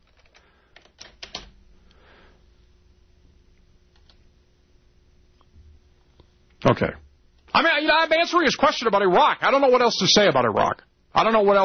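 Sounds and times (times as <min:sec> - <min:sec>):
person typing an email on a computer keyboard: 0:00.0 - 0:01.5
low hum: 0:00.0 - 0:11.6
speech: 0:06.7 - 0:07.0, 0:07.6 - 0:11.6.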